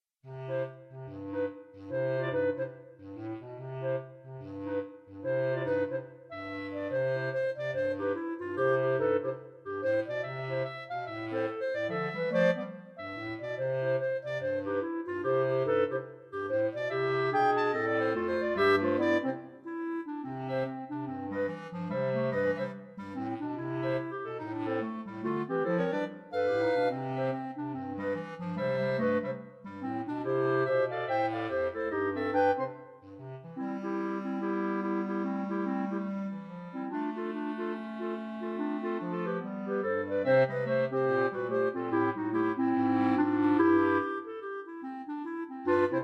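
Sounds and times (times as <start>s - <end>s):
jazz clarinet quartet: 0.3s - 46.0s.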